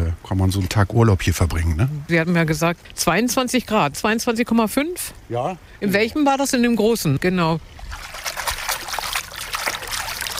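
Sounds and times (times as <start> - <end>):
water trickling and splashing: 0.0 - 10.3
speech: 0.3 - 8.4.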